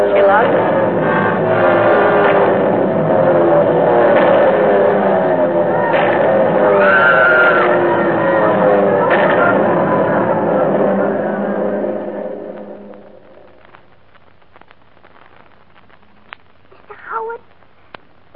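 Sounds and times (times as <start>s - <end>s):
warplanes roaring low toward a road: 0.0s - 13.2s
faint crowd-like voices: 0.0s - 13.9s, 15.0s - 17.6s.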